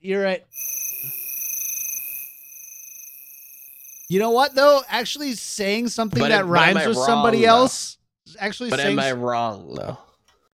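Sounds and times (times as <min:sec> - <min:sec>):
speech: 0:00.0 - 0:01.2, 0:04.1 - 0:10.0
crickets chirping in a high-pitched trill: 0:00.5 - 0:06.1.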